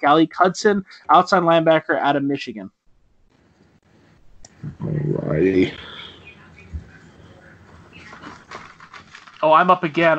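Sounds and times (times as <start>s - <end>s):
speech: 0.0s - 2.8s, 4.6s - 5.9s, 9.4s - 10.1s
papers being shuffled and handled: 7.6s - 10.1s.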